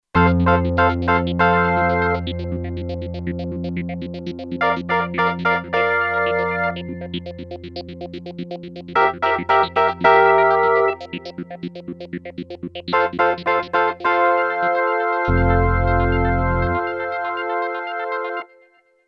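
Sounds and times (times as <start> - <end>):
Kurzweil K2500X synthesizer playing clav, electric piano and organ: 0.2 - 18.6.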